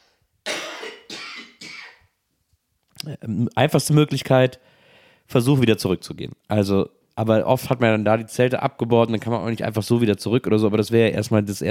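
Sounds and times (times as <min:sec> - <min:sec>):
person coughing: 0:00.5 - 0:02.1
speech: 0:03.1 - 0:04.7, 0:05.3 - 0:11.6.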